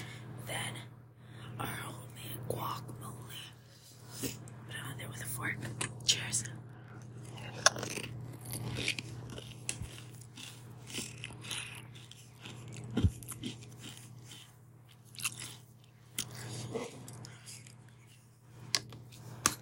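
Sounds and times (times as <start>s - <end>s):
steady low hum: 0.0s - 19.6s
crunchy chewing of food topped with hot salsa: 6.9s - 18.2s.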